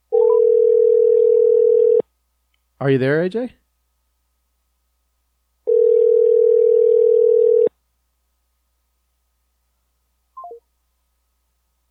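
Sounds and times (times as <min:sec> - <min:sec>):
telephone tone on an outgoing call: 0:00.1 - 0:02.0, 0:05.7 - 0:07.7
speech: 0:02.8 - 0:03.6.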